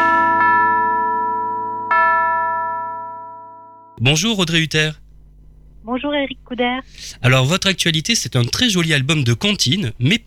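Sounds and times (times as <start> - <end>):
bells ringing: 0.0 - 4.0
speech: 4.0 - 5.0, 5.8 - 10.2.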